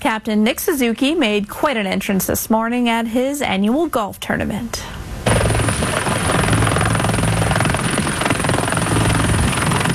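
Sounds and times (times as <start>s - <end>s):
speech: 0.1s - 5.0s
military helicopter rotor thumping: 5.3s - 9.9s.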